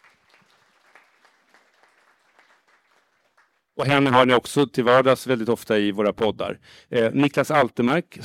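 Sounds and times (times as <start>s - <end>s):
audience applause for a speaker at a panel event: 0.0s - 3.7s
speech: 3.8s - 8.2s.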